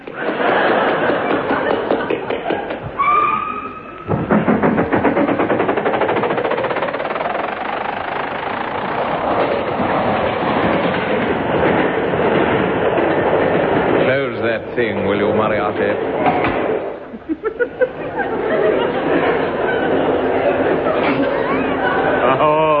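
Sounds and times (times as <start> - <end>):
moving train wheels clattering over rail joints: 0.0 - 3.2, 3.8 - 22.2
laughter: 0.0 - 3.3, 17.0 - 22.7
high squeal: 3.0 - 4.1.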